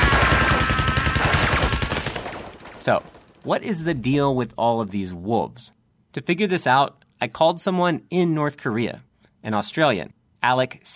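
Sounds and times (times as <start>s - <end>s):
rapid machine gun fire in an animated war cartoon: 0.0s - 3.5s
speech: 2.8s - 10.9s.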